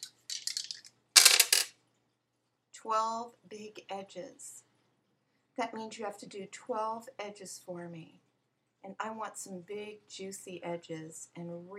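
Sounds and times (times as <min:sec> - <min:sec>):
dice rattling and clattering across a hard surface: 0:00.0 - 0:01.7
speech: 0:02.8 - 0:04.7, 0:05.6 - 0:08.2, 0:08.8 - 0:11.7.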